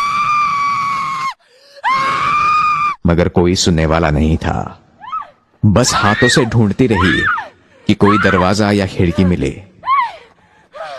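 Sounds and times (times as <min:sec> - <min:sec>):
girl screaming in total darkness: 0:00.0 - 0:03.0, 0:06.0 - 0:10.9
speech: 0:03.1 - 0:04.8, 0:05.6 - 0:09.7.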